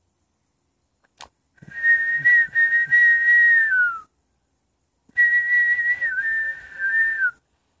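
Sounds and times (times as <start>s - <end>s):
person whistling imitation of a songbird call: 1.6s - 4.1s, 5.1s - 7.4s.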